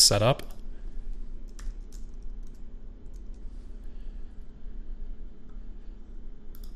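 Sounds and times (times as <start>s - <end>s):
speech: 0.0s - 0.5s
steady low hum: 0.0s - 6.7s
typing on a computer keyboard: 1.5s - 3.4s.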